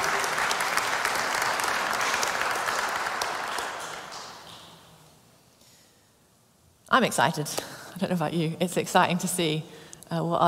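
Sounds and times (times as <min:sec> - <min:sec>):
room full of people clapping: 0:00.0 - 0:04.9
speech: 0:06.9 - 0:10.4.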